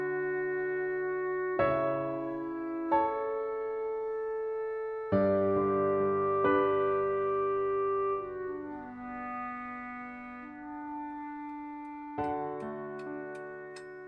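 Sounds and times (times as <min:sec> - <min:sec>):
sustained swelling music: 0:00.0 - 0:14.0.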